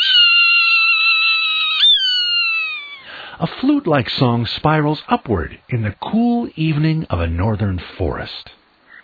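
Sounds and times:
Swainson's hawk raspy scream on the western high plains: 0:00.0 - 0:03.2
speech: 0:03.4 - 0:08.6.

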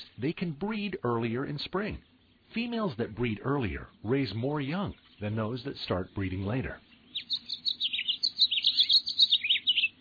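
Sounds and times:
house finch singing a rapid warbling song: 0:00.0 - 0:09.9
speech: 0:00.2 - 0:06.9.

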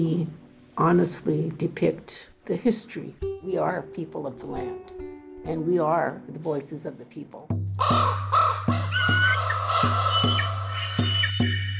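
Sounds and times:
speech: 0:00.0 - 0:08.2
raven flying above a village croaking: 0:07.8 - 0:11.5
faint higher chirps: 0:10.1 - 0:11.7.

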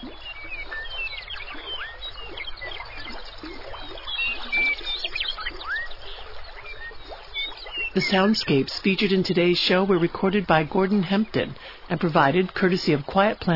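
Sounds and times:
birds chirping and whistling: 0:00.0 - 0:08.6
meandering river water rippling in Grasslands National Park Canada: 0:00.0 - 0:13.5
speech: 0:08.0 - 0:13.5.

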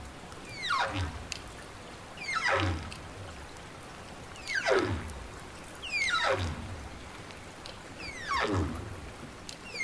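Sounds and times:
whale song: 0:00.5 - 0:01.2, 0:02.2 - 0:03.0, 0:04.4 - 0:05.1, 0:05.8 - 0:06.7, 0:08.0 - 0:09.8.

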